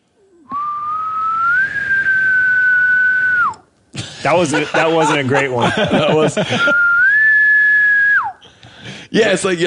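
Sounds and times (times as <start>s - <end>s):
person whistling an imitation of a distant bull elk bugle: 0.4s - 3.7s, 6.6s - 8.5s
laughter: 4.0s - 7.0s
speech: 4.2s - 6.9s, 9.1s - 9.6s.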